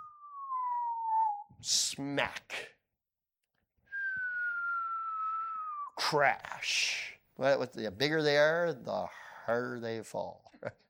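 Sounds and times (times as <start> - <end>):
person whistling falling note imitating a stone slung through air: 0.0 - 1.6, 3.9 - 6.0
speech: 1.6 - 2.7, 6.1 - 10.8.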